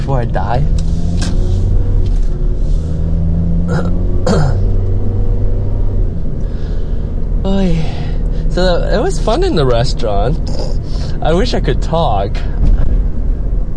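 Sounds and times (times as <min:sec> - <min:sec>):
road noise inside a moving car: 0:00.0 - 0:13.7
speech: 0:00.1 - 0:00.9, 0:03.7 - 0:04.6, 0:07.5 - 0:08.0, 0:08.6 - 0:12.6
person clearing throat or grunting: 0:03.7 - 0:04.7.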